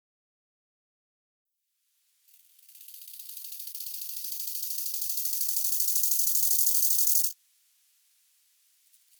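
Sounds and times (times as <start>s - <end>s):
bow-winged grasshopper pulsed hissing buzz: 2.4s - 7.4s.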